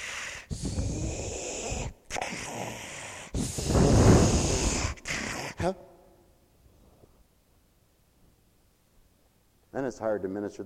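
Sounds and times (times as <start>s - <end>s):
voice imitating labored raspy breathing of a sick hospital patient: 0.0s - 5.8s
speech: 5.6s - 5.9s, 9.8s - 10.6s.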